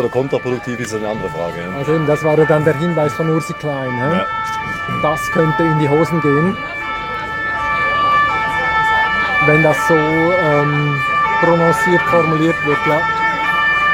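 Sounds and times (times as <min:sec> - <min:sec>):
speech: 0:00.0 - 0:06.8, 0:09.5 - 0:13.2
fire engine siren wailing outside: 0:00.0 - 0:13.9.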